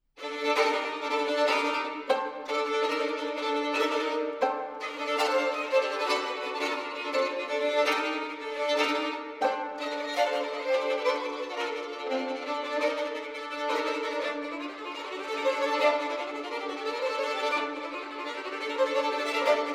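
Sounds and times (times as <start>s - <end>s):
violin duet: 0.2s - 19.7s.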